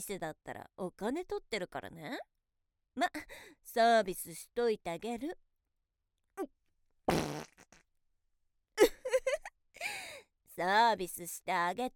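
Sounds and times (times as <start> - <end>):
speech: 0.0 - 2.4, 3.0 - 5.4, 6.4 - 6.6, 10.6 - 11.9
woman farting deliberately: 7.1 - 7.8.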